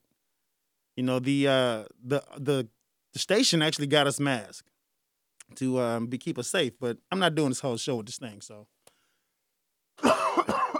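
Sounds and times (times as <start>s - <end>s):
speech: 1.0s - 4.7s, 5.5s - 8.8s
harsh raspy coughs: 10.0s - 10.7s.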